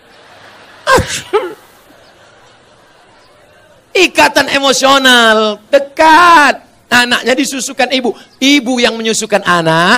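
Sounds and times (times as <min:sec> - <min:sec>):
laughter: 0:00.0 - 0:03.9
person sneezing: 0:00.9 - 0:01.6
speech: 0:01.1 - 0:01.7, 0:04.0 - 0:09.9.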